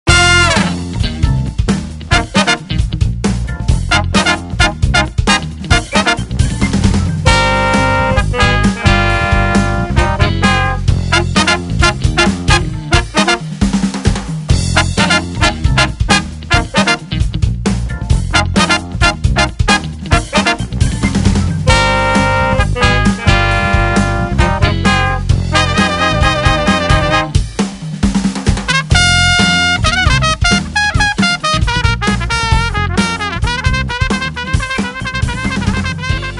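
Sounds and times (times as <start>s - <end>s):
funk horns: 0.1s - 36.3s.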